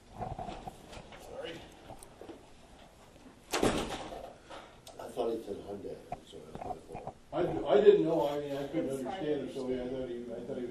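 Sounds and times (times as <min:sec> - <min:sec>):
door pushed shut with a solid thud: 0:03.5 - 0:04.2
speech: 0:05.2 - 0:10.7.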